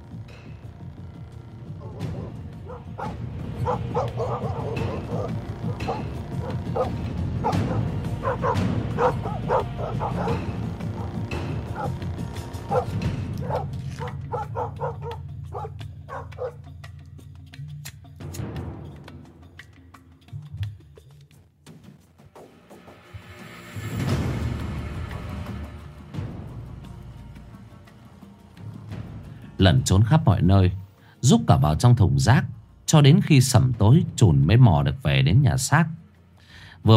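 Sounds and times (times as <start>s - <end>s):
neighborhood dogs barking and yipping loudly: 1.8s - 16.7s
speech: 2.8s - 10.6s, 29.7s - 36.0s.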